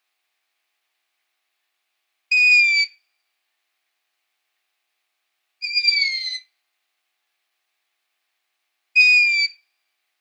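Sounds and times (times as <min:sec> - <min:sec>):
long-eared owl squeak: 0:02.4 - 0:03.0, 0:05.6 - 0:06.5, 0:09.0 - 0:09.6.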